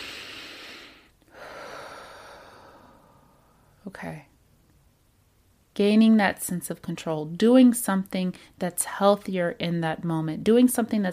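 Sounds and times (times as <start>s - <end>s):
slow deep breath: 0.0s - 3.8s
speech: 3.8s - 4.3s, 5.8s - 11.1s.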